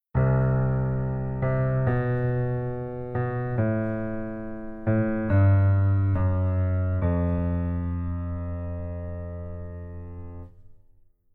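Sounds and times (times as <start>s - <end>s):
keyboard: 0.1s - 10.6s.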